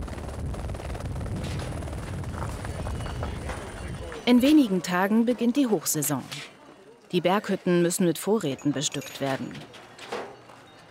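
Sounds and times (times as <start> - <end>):
cargo helicopter rotor flying supply loads to mountain huts: 0.0 - 5.4
speech: 4.3 - 6.5, 7.1 - 9.8.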